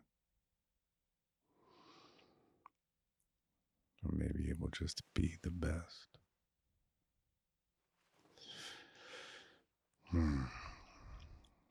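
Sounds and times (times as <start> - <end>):
speech: 4.0 - 6.2
breathy inhale: 8.4 - 9.6
voiced yawn-like exhale with low groan: 10.1 - 11.4.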